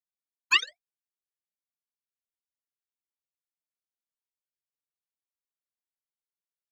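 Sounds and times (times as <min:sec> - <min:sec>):
electronic flash beep: 0:00.5 - 0:00.7.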